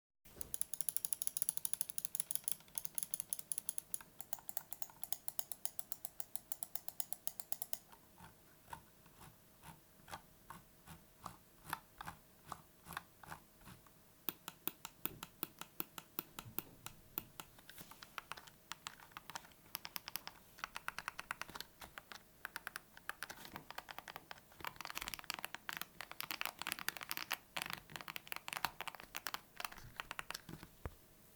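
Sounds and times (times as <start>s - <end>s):
RGB gaming computer mouse: 0.3s - 30.8s.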